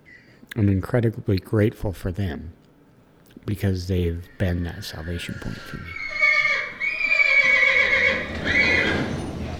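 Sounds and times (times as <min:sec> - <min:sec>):
speech: 0:00.6 - 0:02.6, 0:03.4 - 0:06.0
horse on a ranch near Spanish Fork Utah whinnying: 0:04.2 - 0:09.5.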